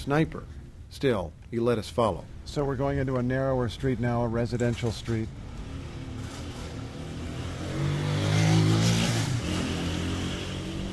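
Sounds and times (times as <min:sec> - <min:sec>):
speech: 0:00.0 - 0:05.4
low rumble of traffic and street noise: 0:00.0 - 0:10.9
motorcycle passing along a narrow residential street: 0:05.4 - 0:10.9.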